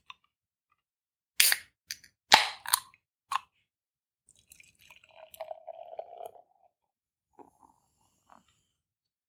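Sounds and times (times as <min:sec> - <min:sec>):
beer being opened with clicks and metallic snaps: 0:01.4 - 0:01.6
beer gurgling as it is poured into a glass: 0:04.3 - 0:06.8.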